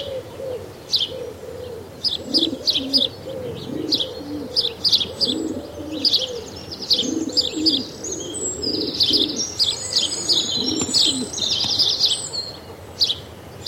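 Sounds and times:
feral pigeons cooing: 0:00.0 - 0:12.9
several house sparrows chirping: 0:00.0 - 0:13.6.

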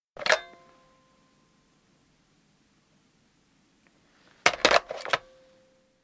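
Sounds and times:
push button telephone handset replaced: 0:00.2 - 0:00.6, 0:04.5 - 0:05.3.

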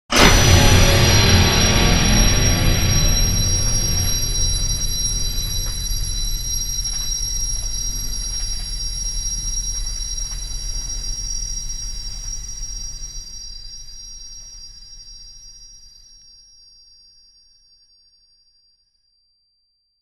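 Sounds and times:
sci-fi spaceship powering down: 0:00.1 - 0:08.6.

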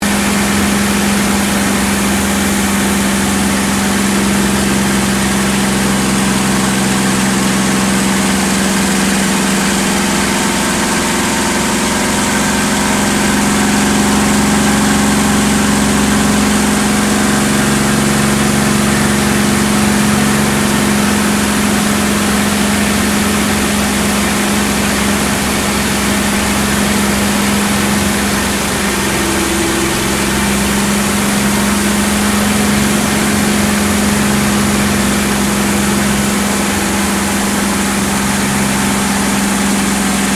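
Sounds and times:
CAC CA-18 Mustang Mk23 aircraft flying, heard from the interior: 0:00.0 - 0:40.3.

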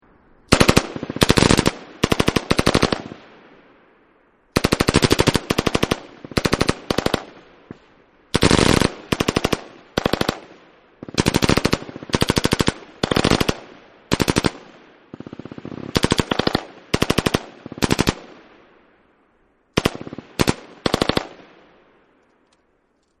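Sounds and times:
M249 machine gun burst at long distance: 0:00.5 - 0:03.2, 0:04.6 - 0:18.3, 0:19.8 - 0:21.4.

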